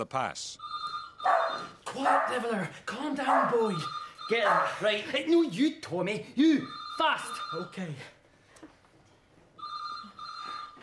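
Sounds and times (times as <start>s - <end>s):
speech: 0.0s - 0.7s, 1.9s - 8.2s
telephone ringing with a steady electronic trill: 0.6s - 2.0s, 3.3s - 5.6s, 6.5s - 8.0s, 9.6s - 10.8s.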